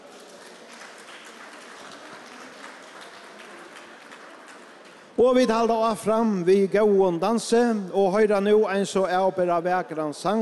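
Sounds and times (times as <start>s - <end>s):
audience clapping: 0.0s - 5.5s
speech: 5.2s - 10.4s.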